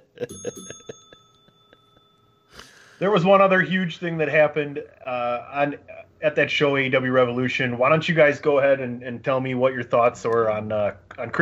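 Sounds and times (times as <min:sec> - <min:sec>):
speech: 0:00.2 - 0:00.9, 0:03.0 - 0:11.4
bicycle bell ringing: 0:00.2 - 0:03.0.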